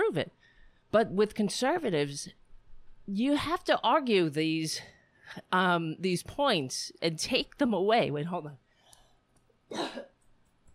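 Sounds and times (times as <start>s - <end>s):
speech: 0.1s - 2.4s, 3.1s - 8.6s, 9.7s - 10.1s
person coughing: 9.7s - 10.2s.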